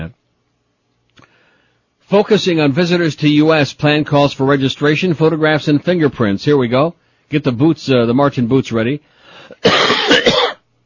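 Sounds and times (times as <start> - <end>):
faint breath: 1.2 - 1.9, 9.1 - 9.6
speech: 2.1 - 10.3
person coughing harshly with phlegm: 9.5 - 10.6.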